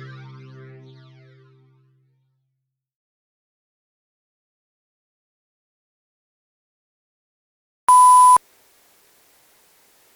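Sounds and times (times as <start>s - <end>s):
electronic button beep: 7.9s - 8.4s.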